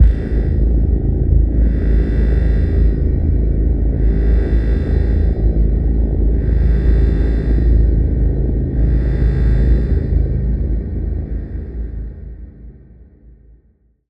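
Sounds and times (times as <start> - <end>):
space core engine: 0.0 - 12.9.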